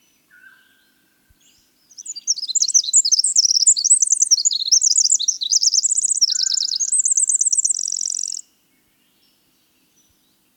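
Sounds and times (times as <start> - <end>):
winter wren singing tinkling trills and warbled notes: 2.0 - 8.4.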